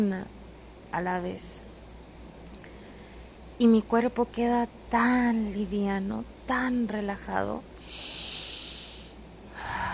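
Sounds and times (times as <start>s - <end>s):
speech: 0.0s - 1.7s, 3.6s - 8.1s
long airy breath exhaled slowly: 7.8s - 9.9s.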